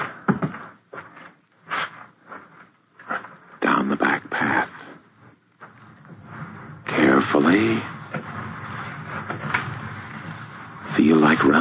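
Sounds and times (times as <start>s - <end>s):
handling sounds: 0.0s - 3.8s, 4.4s - 11.5s
house door eased open and shut quietly: 5.6s - 11.0s.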